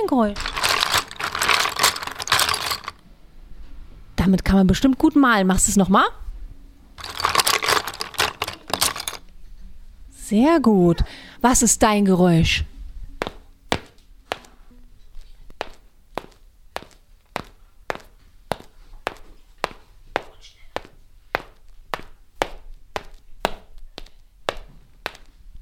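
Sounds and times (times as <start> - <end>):
speech: 0.0 - 0.6, 4.2 - 6.2, 10.3 - 12.7
footsteps of someone walking: 0.4 - 3.0, 7.0 - 9.2, 13.2 - 14.6, 15.2 - 25.5.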